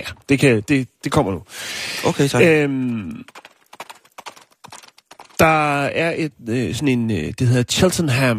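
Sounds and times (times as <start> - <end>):
speech: 0.0 - 3.5, 5.4 - 8.3
horse hooves clip-clopping: 2.5 - 5.5.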